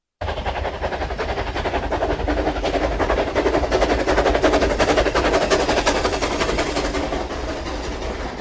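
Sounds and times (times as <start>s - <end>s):
passing steam train: 0.2s - 8.3s.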